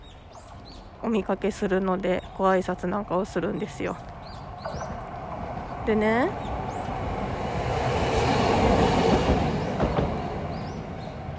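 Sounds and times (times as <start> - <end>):
train rumbling past on rails: 0.0 - 11.3
speech: 1.0 - 4.8, 5.8 - 6.5.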